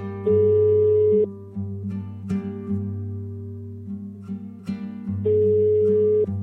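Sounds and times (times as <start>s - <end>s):
outgoing phone call ringback tone: 0.3s - 1.3s, 5.3s - 6.3s.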